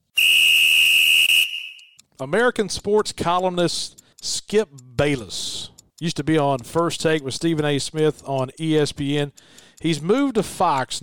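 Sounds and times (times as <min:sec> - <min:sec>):
shrill whistle blast to start a timed segment: 0:00.1 - 0:02.0
speech: 0:02.2 - 0:11.0.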